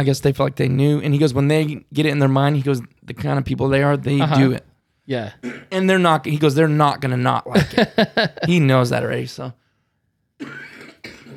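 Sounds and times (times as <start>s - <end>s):
speech: 0.0s - 9.6s, 10.4s - 10.7s
harsh coughs: 5.4s - 5.8s, 10.4s - 11.3s
laughter: 7.5s - 8.7s.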